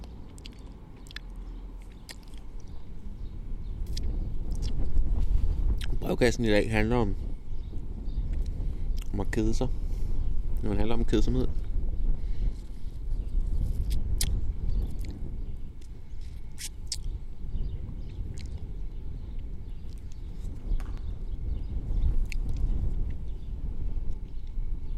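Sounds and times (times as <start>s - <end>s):
wind on a sunny day buffeting an outdoor microphone in a town square: 0.0s - 24.9s
speech: 6.1s - 7.2s, 9.3s - 9.8s, 10.6s - 11.6s.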